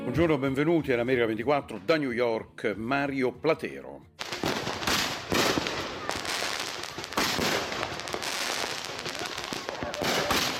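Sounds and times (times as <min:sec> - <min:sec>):
speech: 0:00.2 - 0:04.1
Independence Day fireworks crackling and popping: 0:04.2 - 0:10.5.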